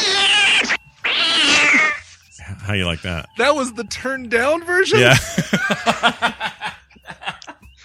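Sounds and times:
cat screeching: 0.0s - 2.0s
speech: 2.7s - 6.5s
laughter: 5.0s - 7.7s.

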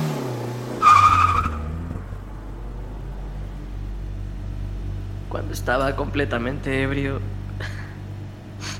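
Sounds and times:
car tire screech: 0.0s - 3.1s
car engine revving: 0.0s - 8.4s
speech: 5.4s - 7.8s.

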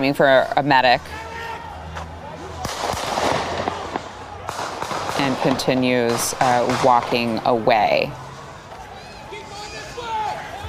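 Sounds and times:
speech: 0.0s - 1.3s, 5.2s - 8.2s
gunshots during a street riot: 2.6s - 7.9s.

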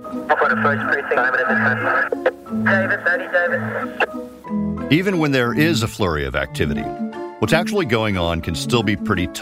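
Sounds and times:
static hiss: 0.0s - 4.5s
speech: 0.2s - 9.4s
police scanner radio chatter: 0.3s - 4.1s.

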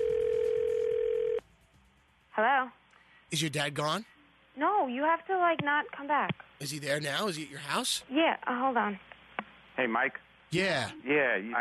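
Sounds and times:
steady single-pitch telephone tone: 0.0s - 1.4s
speech: 2.4s - 9.1s, 9.8s - 11.5s.

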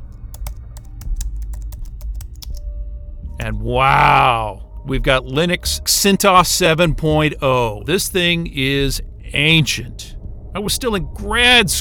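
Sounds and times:
steady low hum: 0.0s - 11.7s
typing on a computer terminal keyboard: 0.1s - 2.6s
speech: 3.4s - 11.7s.

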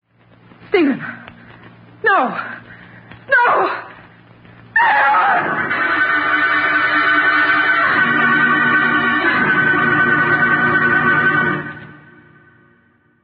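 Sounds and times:
speech: 0.8s - 1.2s, 2.1s - 2.6s
dramatic brassy musical sting from a 1940s radio drama: 4.8s - 12.8s.

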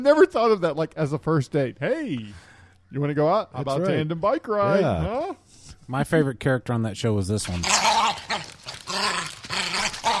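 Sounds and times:
speech: 0.0s - 8.4s
cartoon dog growling and snarling: 7.4s - 10.1s.

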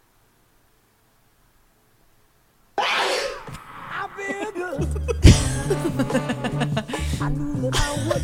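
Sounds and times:
loud breathy sneeze: 2.8s - 4.3s, 5.2s - 7.2s
laughter: 4.0s - 7.2s
funky groove with punchy bassline and steady beat: 4.9s - 7.5s.

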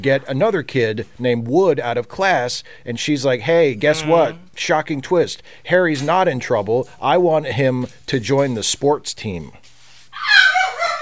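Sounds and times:
speech: 0.0s - 9.6s
pet dog high drawn-out bark stretching into a whine: 3.9s - 4.4s, 10.2s - 10.9s.

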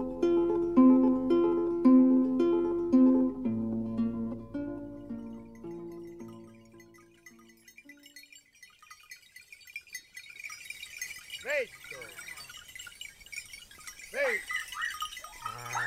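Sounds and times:
outdoor ambience: 0.0s - 15.8s
high tinkling bells: 4.8s - 15.8s
sheep bleating: 15.4s - 15.8s.

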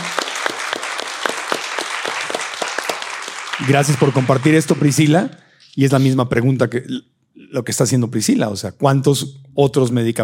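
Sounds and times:
small group applauding: 0.0s - 5.3s
speech: 3.6s - 10.2s.

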